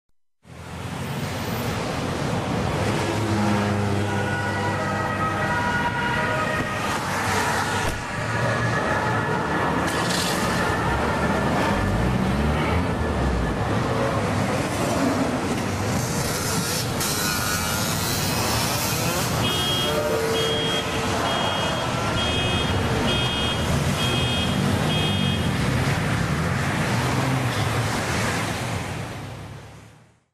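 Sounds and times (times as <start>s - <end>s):
street ambience: 0.4s - 30.3s.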